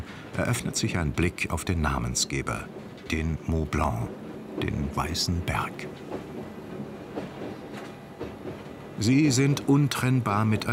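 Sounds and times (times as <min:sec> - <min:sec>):
train running on a mountain railway toward Chamonix below Mont Blanc: 0:00.0 - 0:10.7
speech: 0:00.4 - 0:06.3, 0:09.0 - 0:10.7.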